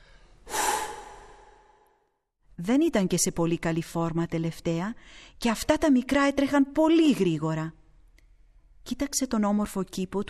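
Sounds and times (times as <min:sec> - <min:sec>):
heavy breathing from a person imitating a giant catching his breath: 0:00.0 - 0:02.0
speech: 0:02.6 - 0:07.8, 0:08.8 - 0:10.2.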